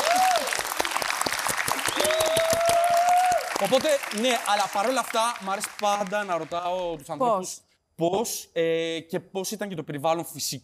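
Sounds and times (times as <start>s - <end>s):
audience applause: 0.0s - 7.0s
whistles: 1.8s - 2.8s
speech: 3.6s - 10.6s.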